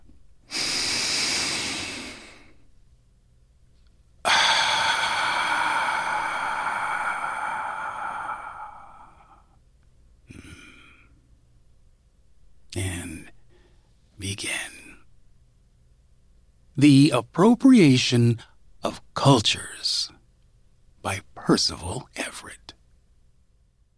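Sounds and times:
deep breathing with sighing breath: 0:00.5 - 0:02.7, 0:04.2 - 0:09.6, 0:10.3 - 0:11.2, 0:13.4 - 0:13.9
speech: 0:16.8 - 0:20.1, 0:21.0 - 0:22.6.

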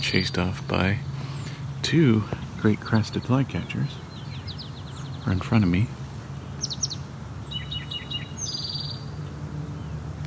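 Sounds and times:
speech: 0:00.0 - 0:01.1, 0:01.8 - 0:04.0, 0:05.2 - 0:06.0
eastern towhee singing a variant song: 0:00.0 - 0:10.1
steady low hum: 0:00.0 - 0:10.2.

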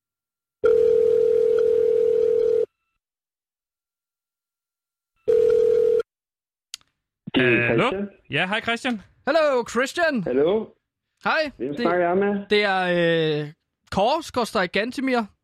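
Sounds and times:
telephone dial tone while placing a call: 0:00.6 - 0:02.7, 0:05.3 - 0:06.1
speech: 0:07.4 - 0:15.4.

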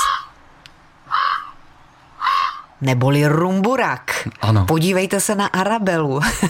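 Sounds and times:
common raven croaking: 0:00.0 - 0:00.4, 0:01.0 - 0:02.8
speech: 0:02.8 - 0:06.4.

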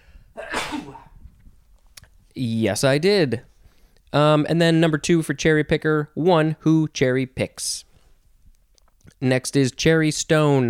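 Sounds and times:
person sneezing: 0:00.4 - 0:01.2
speech: 0:00.8 - 0:01.1, 0:02.4 - 0:03.5, 0:04.1 - 0:07.9, 0:09.2 - 0:10.6.

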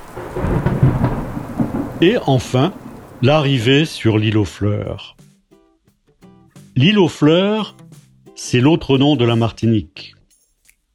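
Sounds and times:
deep rolling thunder during a storm on a boat crossing to Martinique: 0:00.0 - 0:04.3
heavy rain during a storm on a boat crossing to Martinique: 0:00.0 - 0:04.6
speech: 0:02.0 - 0:05.2, 0:06.8 - 0:07.8, 0:08.4 - 0:10.2.

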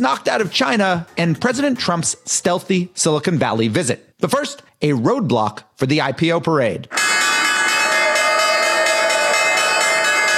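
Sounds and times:
speech: 0:00.0 - 0:07.1
New York Stock Exchange opening bell ringing: 0:06.9 - 0:10.3.

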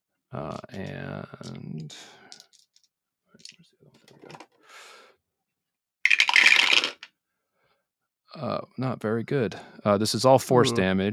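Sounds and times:
speech: 0:00.3 - 0:02.2, 0:08.4 - 0:11.1
dice being rolled for a 5d8 damage roll in a tabletop role-playing game: 0:02.3 - 0:03.6, 0:06.1 - 0:07.1.

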